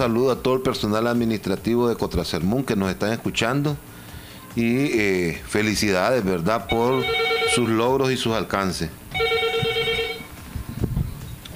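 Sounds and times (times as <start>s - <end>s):
speech: 0.0s - 3.9s, 4.5s - 9.2s
telephone ringing with an incoming call: 6.7s - 8.0s, 9.1s - 10.4s.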